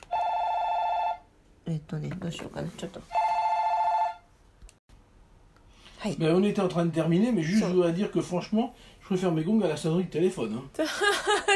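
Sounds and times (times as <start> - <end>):
telephone ringing with a steady electronic tone: 0.0 - 1.3, 3.2 - 4.2
speech: 1.7 - 3.2, 6.0 - 11.5.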